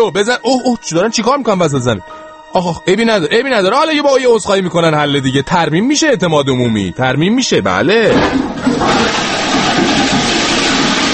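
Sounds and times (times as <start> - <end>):
speech: 0.0 - 9.4
toilet flushing: 8.0 - 11.1.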